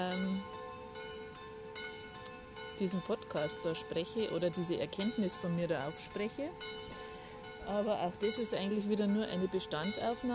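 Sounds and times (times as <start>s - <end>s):
bells ringing: 0.0s - 10.3s
speech: 2.8s - 6.8s, 7.7s - 10.3s.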